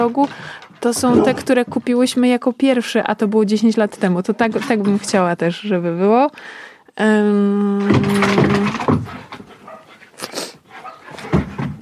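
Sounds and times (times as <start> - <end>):
dogs barking and yipping excitedly: 0.0 - 2.0, 8.7 - 11.7
speech: 0.0 - 9.2.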